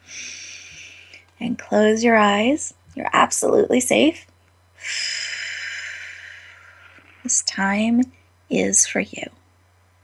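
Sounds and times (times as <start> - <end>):
deep belly breath in through nose and out through mouth: 0.0 - 1.2, 4.8 - 7.3
faint steady hum: 0.0 - 10.0
speech: 1.4 - 4.3, 7.6 - 9.4.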